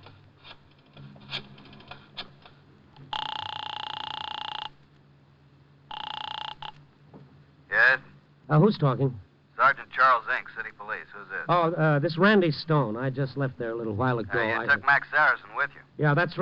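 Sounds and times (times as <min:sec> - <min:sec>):
telephone ringing on the line after a number is dialed to a home: 0:03.0 - 0:04.8, 0:05.9 - 0:06.8
speech: 0:07.9 - 0:16.4.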